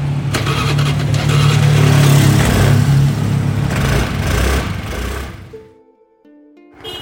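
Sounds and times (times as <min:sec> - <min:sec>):
motorbike engine while riding on a road in Bali, Indonesia: 0:00.0 - 0:05.6.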